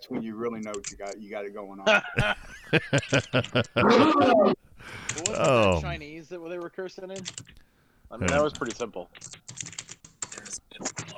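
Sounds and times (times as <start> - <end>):
speech: 0.0 - 9.7
angry typing on computer keyboard: 0.6 - 1.1, 5.0 - 5.5, 7.2 - 7.6, 8.2 - 11.1
laughter: 1.9 - 4.6.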